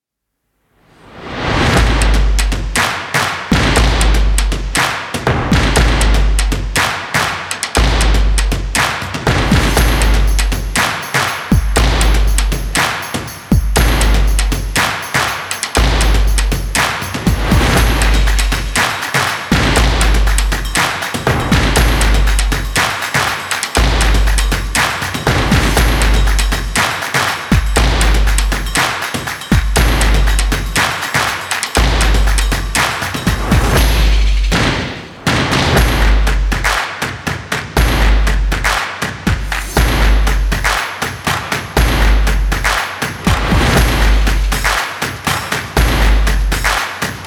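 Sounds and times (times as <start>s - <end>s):
energetic background stomp percussion: 1.6s - 47.2s.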